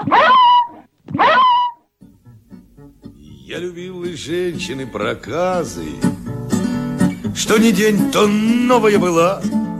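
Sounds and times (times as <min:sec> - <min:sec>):
dog barking in drawn-out whining yelps: 0:00.0 - 0:01.8
speech: 0:03.5 - 0:06.2, 0:07.4 - 0:09.6.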